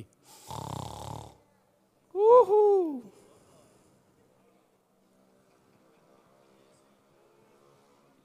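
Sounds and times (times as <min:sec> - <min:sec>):
quiet breathing: 0:00.2 - 0:01.8, 0:03.1 - 0:04.4
person snoring with a rasping rattle: 0:00.3 - 0:01.4.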